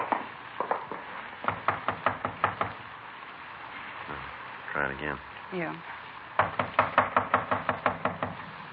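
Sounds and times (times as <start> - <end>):
police officers knocking on a door: 0.1 - 2.8, 6.4 - 8.4
people talking: 4.1 - 5.8.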